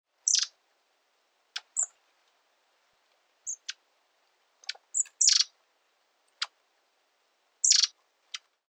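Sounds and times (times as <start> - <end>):
long-tailed tit thin high calls and buzzy bursts: 0.2 - 0.6, 1.6 - 2.0, 3.4 - 3.8, 4.6 - 5.6, 7.6 - 8.5.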